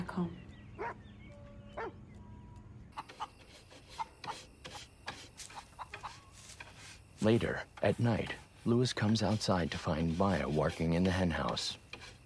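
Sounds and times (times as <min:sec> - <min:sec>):
speech: 0:00.2 - 0:01.0, 0:07.2 - 0:11.8
faint dog barking while playing with children: 0:00.8 - 0:01.0, 0:01.7 - 0:02.0.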